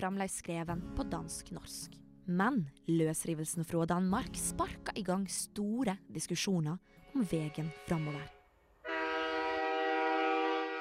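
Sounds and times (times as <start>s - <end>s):
speech: 0.0s - 8.4s
steam train whistle: 8.8s - 10.7s.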